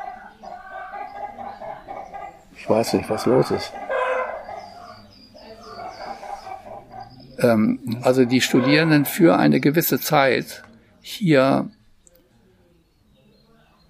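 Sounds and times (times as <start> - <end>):
chickens clucking and squawking on a farmyard: 0.0 - 11.9
speech: 2.6 - 3.8, 7.4 - 11.8.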